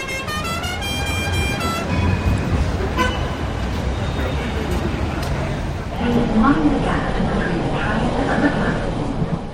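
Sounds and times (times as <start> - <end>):
brief horn toot: 0.0 - 3.6
indistinct voices of passersby chattering: 0.0 - 9.5
steady roar of cars and buses on a busy London street: 0.0 - 9.5.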